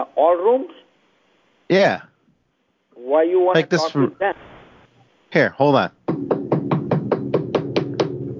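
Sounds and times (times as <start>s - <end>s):
speech: 0.0s - 0.9s, 1.7s - 2.1s, 3.0s - 4.5s, 5.3s - 6.0s
firm knocking on a wooden door: 6.0s - 8.2s.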